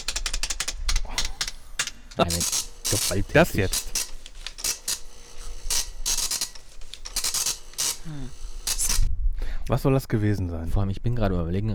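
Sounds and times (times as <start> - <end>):
computer keyboard typing: 0.0 - 9.1
speech: 2.2 - 4.0, 9.7 - 11.7.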